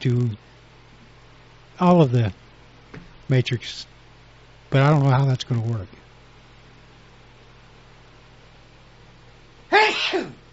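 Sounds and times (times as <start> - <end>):
speech: 0.0 - 0.5, 1.8 - 2.4, 3.3 - 4.0, 4.7 - 6.0, 10.1 - 10.4
single loud sneeze: 9.7 - 10.4.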